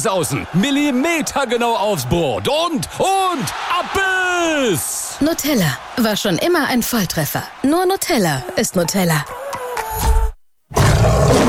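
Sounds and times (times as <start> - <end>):
speech: 0.0 - 9.4
lion roaring: 10.7 - 11.4.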